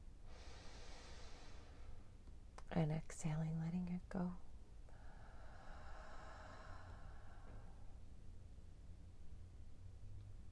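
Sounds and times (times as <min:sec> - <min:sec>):
slow deep inhale through the nose during mantra breathing practice: 0:00.2 - 0:02.2, 0:04.9 - 0:08.0
speech: 0:02.8 - 0:04.5.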